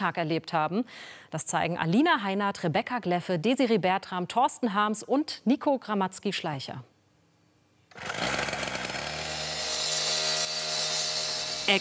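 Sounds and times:
speech: 0.0s - 6.9s, 8.0s - 8.3s
saw or cutter running at a tram line construction site: 7.9s - 11.8s.

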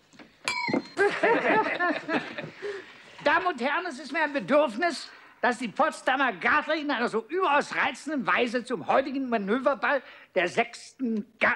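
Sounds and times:
drinking glass tapped for attention: 0.4s - 1.2s
laughter: 1.0s - 3.1s
speech: 1.2s - 11.5s.

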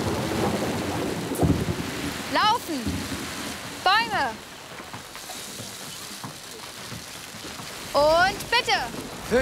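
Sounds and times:
thunder rumbling and cracking: 0.0s - 4.5s
steady dense rain: 0.0s - 9.3s
speech: 2.7s - 3.0s, 4.2s - 4.5s, 8.0s - 9.3s.

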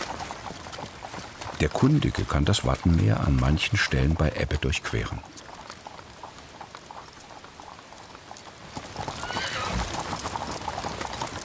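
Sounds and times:
carriage wheels rattling: 0.0s - 11.4s
horse-drawn carriages clip-clopping over wet ground on tidal flats: 0.0s - 11.4s
speech: 1.6s - 5.4s
horse whinny: 8.9s - 10.6s.

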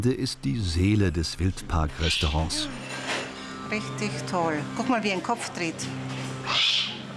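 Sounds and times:
speech: 0.0s - 3.1s, 3.7s - 6.8s
steady low hum: 0.0s - 4.7s
young Eurasian eagle-owl calling with harsh raspy hissing calls in a wildlife park: 6.4s - 7.0s.

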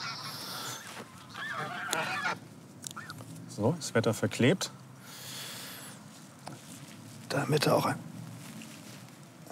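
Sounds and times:
geese honking as a dog chases them outdoors: 0.0s - 3.2s
speech: 3.6s - 4.8s, 7.3s - 8.1s.

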